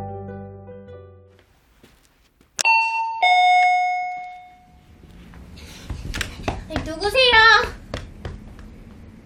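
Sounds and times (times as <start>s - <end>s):
two-tone ding-dong doorbell: 2.6s - 4.8s
child's voice: 6.7s - 7.8s
person talking: 6.7s - 7.8s.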